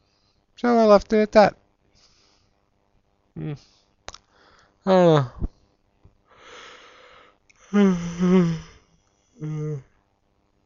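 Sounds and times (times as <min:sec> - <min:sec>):
speech: 0:00.6 - 0:01.6, 0:03.4 - 0:03.8, 0:04.8 - 0:05.5, 0:07.7 - 0:08.7, 0:09.4 - 0:09.9
person yawning: 0:04.9 - 0:05.5, 0:07.6 - 0:10.0.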